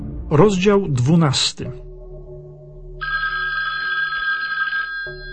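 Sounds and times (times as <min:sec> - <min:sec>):
speech: 0:00.3 - 0:01.9
telephone bell ringing: 0:03.0 - 0:05.3.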